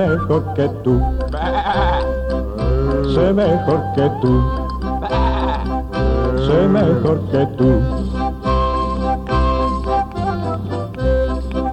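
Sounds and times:
speech: 0.0 - 2.0, 3.1 - 5.3, 6.4 - 8.1
steady low backing: 0.0 - 11.7
lamb bleating: 1.3 - 3.1, 5.0 - 7.0.

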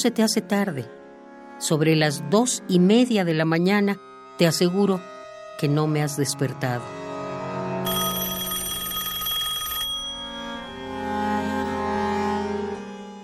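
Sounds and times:
speech: 0.0 - 1.0, 1.6 - 7.0
telephone bell ringing: 7.8 - 11.8.

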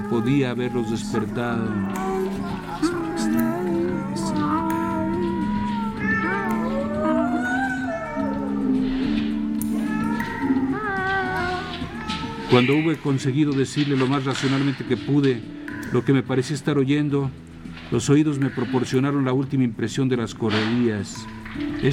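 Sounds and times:
cats meowing and yowling: 0.0 - 14.7, 18.2 - 19.1
speech: 0.1 - 2.1, 12.5 - 21.9.

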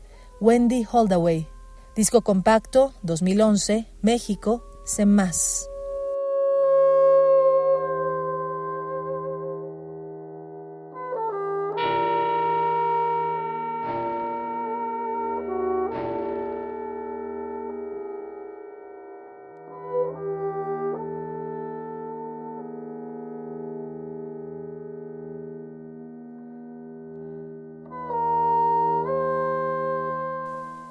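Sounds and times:
bassoon-like reed line with rich harmonics: 0.0 - 10.2, 10.8 - 17.2, 19.8 - 23.8, 27.9 - 30.8
speech: 0.4 - 5.7.

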